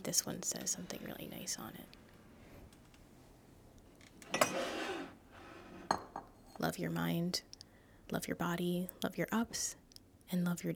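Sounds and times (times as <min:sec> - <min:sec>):
speech: 0:00.0 - 0:02.0, 0:06.6 - 0:07.5, 0:08.1 - 0:10.7
mugs rubbing and shuffling while being picked out: 0:02.1 - 0:06.7
ceramic mugs clinking together: 0:04.2 - 0:06.6.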